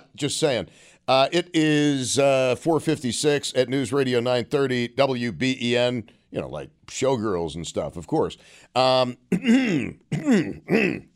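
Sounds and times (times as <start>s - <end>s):
speech: 0.2s - 11.1s
throat clearing: 9.3s - 11.1s.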